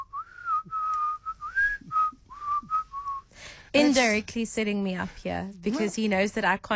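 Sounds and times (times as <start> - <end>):
person whistling a song melody: 0.0 - 3.3
speech: 3.7 - 6.7.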